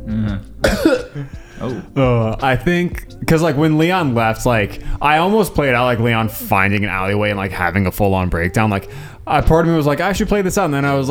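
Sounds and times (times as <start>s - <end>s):
single sharp cough: 0.0s - 3.2s
low throaty hum: 0.0s - 10.9s
speech: 0.1s - 11.0s.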